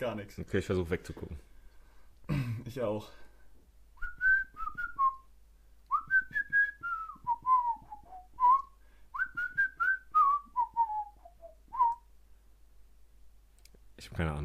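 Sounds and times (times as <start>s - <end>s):
speech: 0.0s - 1.5s, 2.7s - 3.2s, 14.0s - 14.4s
person whistling a Christmas song melody: 4.0s - 5.3s, 5.9s - 12.1s.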